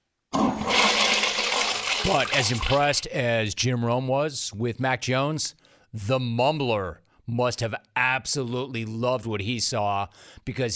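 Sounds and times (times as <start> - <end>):
toilet flushing: 0.3 - 3.0
speech: 2.0 - 10.7.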